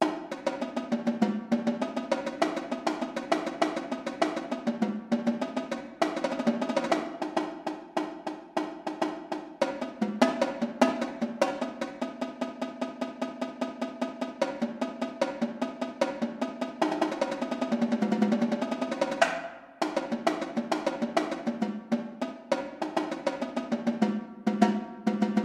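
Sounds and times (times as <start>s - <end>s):
drumline tenor drums: 0.0s - 25.4s.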